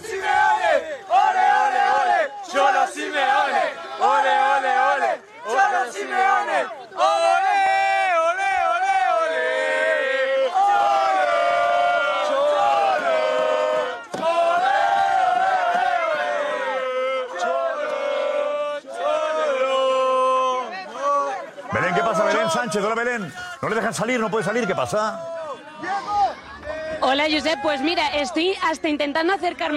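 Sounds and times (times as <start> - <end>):
many football fans singing together in unison: 0.0 - 22.5
crowd of Argentina football fans chanting rhythmically: 0.0 - 28.3
speech: 22.7 - 25.4, 27.1 - 29.7.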